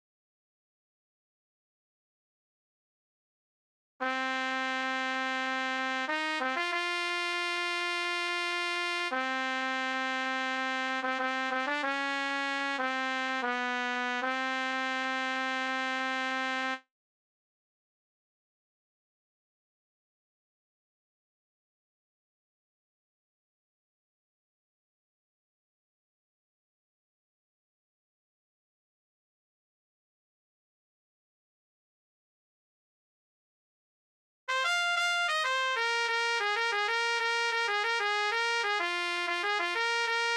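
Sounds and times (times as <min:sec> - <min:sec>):
trumpet: 0:04.0 - 0:16.9, 0:34.5 - 0:40.3.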